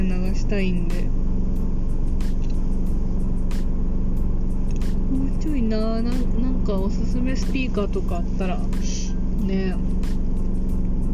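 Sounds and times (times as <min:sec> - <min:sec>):
car engine rumble heard from inside the vehicle while driving: 0:00.0 - 0:11.1
speech: 0:00.4 - 0:01.3, 0:05.4 - 0:10.2.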